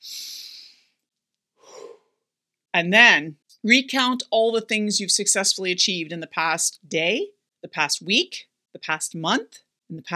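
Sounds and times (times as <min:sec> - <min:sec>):
deep breath: 0:01.6 - 0:02.1
speech: 0:02.8 - 0:10.1.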